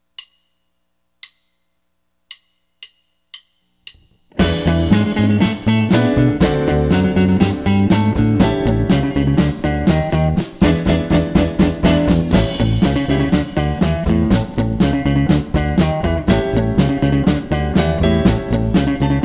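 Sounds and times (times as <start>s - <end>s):
Chicago blues in A: 4.3s - 19.2s.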